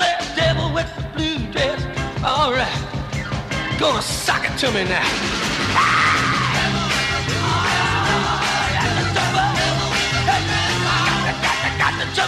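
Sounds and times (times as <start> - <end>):
loud driving rock band playing: 0.0 - 12.2
speech: 3.8 - 6.2, 11.4 - 12.2
high piercing falsetto scream in rock recording: 5.7 - 6.7.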